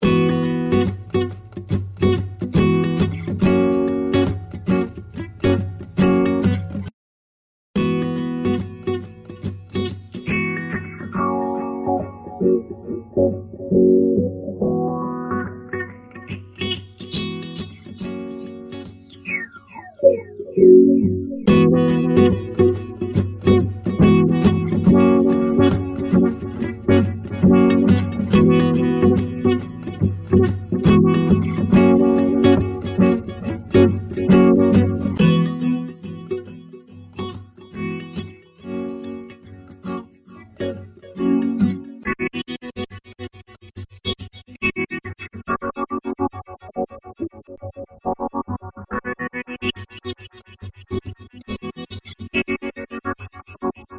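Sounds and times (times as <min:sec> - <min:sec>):
guitar input signal: 0:00.0 - 0:06.9, 0:07.8 - 0:53.9.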